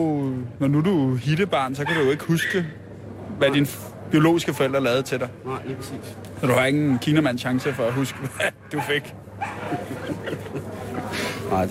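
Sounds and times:
speech: 0.0s - 2.8s, 3.4s - 10.6s, 11.5s - 11.7s
dog barking in short yappy bursts: 1.8s - 2.7s, 7.5s - 10.1s
laughter: 8.0s - 11.6s.

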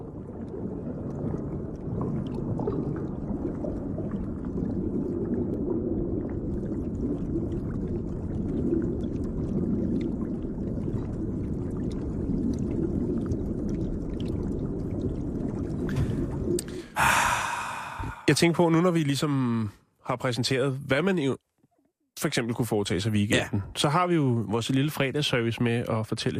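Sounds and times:
deep underwater rumble: 0.0s - 18.8s
soft underwater bubbling: 0.0s - 19.7s
underwater clicks: 15.8s - 16.9s
speech: 18.3s - 21.4s, 22.2s - 26.3s.

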